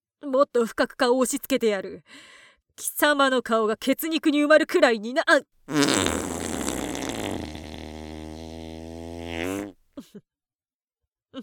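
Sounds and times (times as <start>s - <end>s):
speech: 0.2s - 6.3s, 9.4s - 10.3s
long loud sputtery fart: 5.7s - 9.8s.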